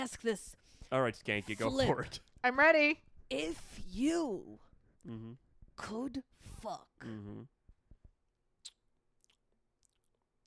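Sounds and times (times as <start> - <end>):
speech: 0.0 - 7.6
person chewing and eating oatmeal: 8.6 - 10.4.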